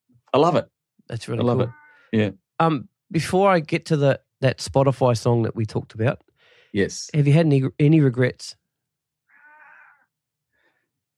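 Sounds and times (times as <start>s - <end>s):
speech: 0.3s - 8.6s
pet cat meowing: 1.4s - 2.1s, 9.3s - 10.1s.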